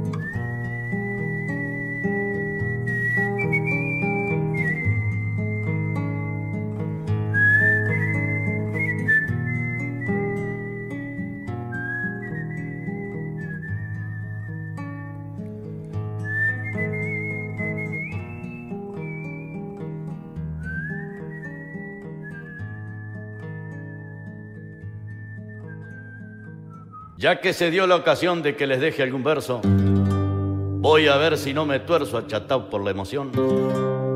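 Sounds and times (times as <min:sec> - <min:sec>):
person whistling a slow mournful melody: 0:00.1 - 0:15.0, 0:16.2 - 0:27.2
speech: 0:27.3 - 0:30.1, 0:30.9 - 0:34.0.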